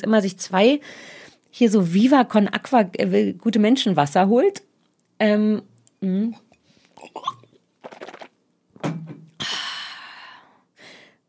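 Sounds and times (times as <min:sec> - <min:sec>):
speech: 0:00.0 - 0:06.4, 0:07.0 - 0:07.4
loud breathing and gasping into the microphone: 0:00.8 - 0:01.4, 0:09.4 - 0:11.2.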